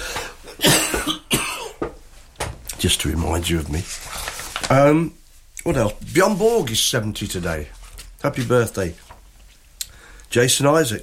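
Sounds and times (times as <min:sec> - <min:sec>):
person coughing harshly: 0:00.4 - 0:01.9
speech: 0:02.8 - 0:09.0, 0:10.3 - 0:11.0.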